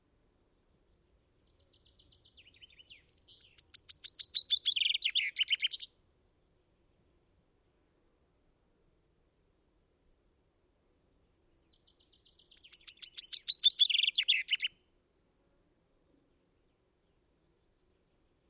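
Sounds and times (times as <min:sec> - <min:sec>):
common chaffinch Fringilla coelebs singing: 0:00.6 - 0:05.9, 0:11.4 - 0:15.4.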